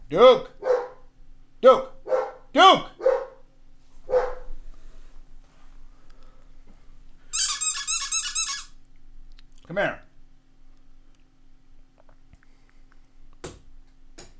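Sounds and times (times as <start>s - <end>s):
speech: 0.1s - 0.5s, 1.6s - 1.9s, 2.5s - 3.0s, 9.8s - 10.0s
dog barking: 0.6s - 1.1s, 2.0s - 3.4s, 4.1s - 4.5s
shrill high-pitched squeals of a rabbit caught by a dog: 7.4s - 8.8s.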